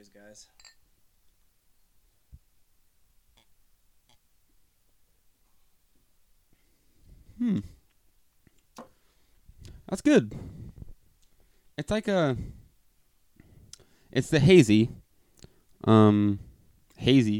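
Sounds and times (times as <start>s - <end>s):
speech: 0.1s - 0.7s, 7.4s - 7.8s, 9.9s - 10.5s, 11.8s - 12.6s, 14.1s - 15.0s, 15.8s - 16.4s, 17.0s - 17.3s
glasses clinking in a toast: 0.6s - 0.9s.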